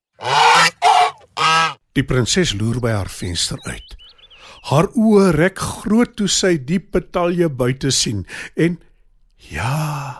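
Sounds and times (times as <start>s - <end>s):
goose honking: 0.2s - 1.8s
speech: 2.0s - 10.1s.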